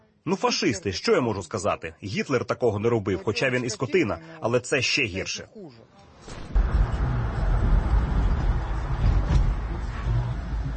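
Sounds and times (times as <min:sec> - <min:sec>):
speech: 0:00.2 - 0:06.4
car engine and road noise in busy city traffic in Zaporizhzhia, Ukraine: 0:06.6 - 0:10.7.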